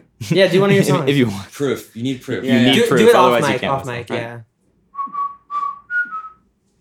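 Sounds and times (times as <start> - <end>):
laughter: 0.2 - 1.5, 2.5 - 4.2
speech: 0.2 - 5.2
person whistling a tune: 5.0 - 6.4.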